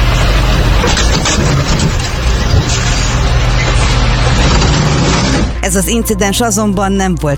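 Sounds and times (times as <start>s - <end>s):
dump truck grinding against a parked car: 0.0s - 5.6s
dump truck heavy engine rumbling: 0.0s - 7.3s
speech: 5.6s - 7.3s.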